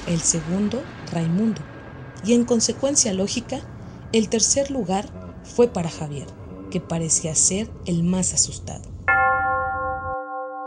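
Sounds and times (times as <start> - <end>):
low rumble: 0.0 - 9.1
speech: 0.1 - 8.9
deep church bell tolling midnight: 9.1 - 10.6.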